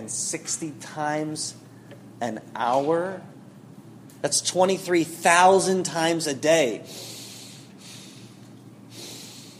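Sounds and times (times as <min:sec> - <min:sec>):
speech: 0:00.1 - 0:03.4, 0:04.2 - 0:07.1
person breathing in: 0:06.9 - 0:09.5.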